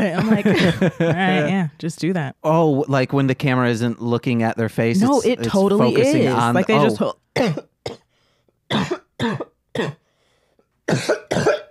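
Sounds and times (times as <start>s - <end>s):
laughter: 0.0s - 1.5s
speech: 0.0s - 8.0s, 8.7s - 10.0s, 10.9s - 11.6s
person coughing harshly and dryly after using poppers: 7.4s - 8.1s, 8.7s - 10.0s, 10.9s - 11.7s.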